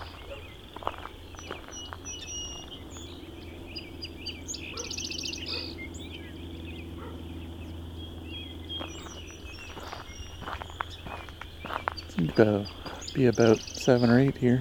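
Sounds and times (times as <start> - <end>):
soft footsteps: 0.0 - 2.8, 8.8 - 14.5
song sparrow singing a bright trilling phrase: 0.0 - 14.5
steady outdoor drone of frogs or insects: 0.0 - 14.5
speech: 12.4 - 14.5.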